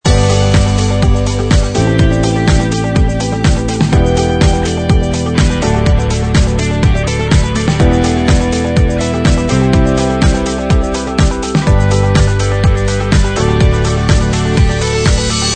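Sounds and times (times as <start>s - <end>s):
upbeat corporate music loop: 0.0s - 15.5s.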